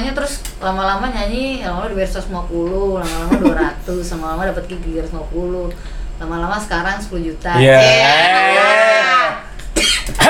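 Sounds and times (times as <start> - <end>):
speech: 0.2 - 9.4
person coughing in harsh loud bursts: 9.7 - 10.2.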